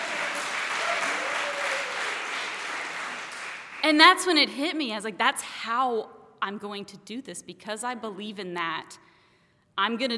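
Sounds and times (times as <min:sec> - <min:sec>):
crowd applauding: 0:00.0 - 0:03.8
speech: 0:03.8 - 0:09.1, 0:09.8 - 0:10.1.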